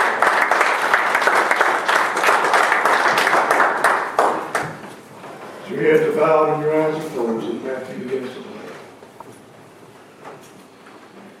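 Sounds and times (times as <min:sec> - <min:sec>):
audience applauding in a church: 0:00.0 - 0:05.0
speech: 0:05.8 - 0:08.4.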